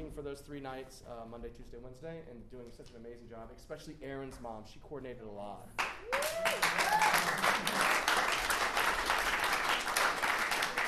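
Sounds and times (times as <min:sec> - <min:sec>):
speech: 0:00.1 - 0:08.0
audience applauding: 0:05.8 - 0:10.8
whistle or cheer: 0:06.0 - 0:07.4.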